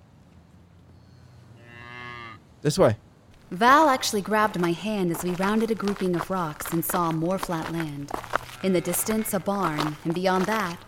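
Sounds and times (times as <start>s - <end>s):
cows mooing in an open field: 1.6s - 2.4s, 8.3s - 9.9s
speech: 2.6s - 10.8s.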